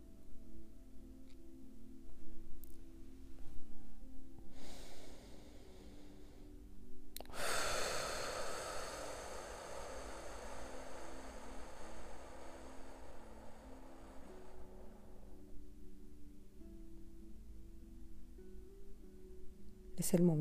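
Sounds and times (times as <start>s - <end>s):
slow deep breathing in through the nose, out through the mouth: 3.4s - 16.3s
speech: 20.0s - 20.3s.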